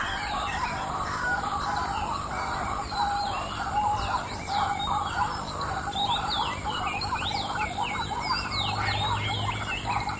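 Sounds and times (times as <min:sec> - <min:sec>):
waterbirds whistling in a chorus: 0:00.0 - 0:10.1.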